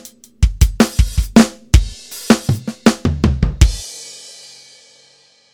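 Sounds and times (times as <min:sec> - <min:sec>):
acoustic music on vinyl: 0:00.5 - 0:03.8.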